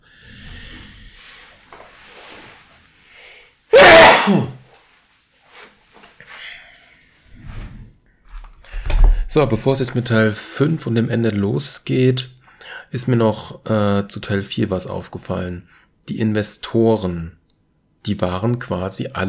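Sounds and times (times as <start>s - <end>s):
sneeze: 3.7s - 4.6s
speech: 4.2s - 4.6s, 9.4s - 17.4s, 18.0s - 19.2s.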